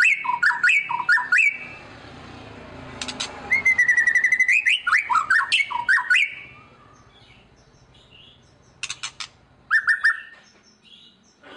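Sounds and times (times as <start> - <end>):
white-rumped shama song: 0.0 - 1.8, 3.5 - 7.0, 9.7 - 10.7.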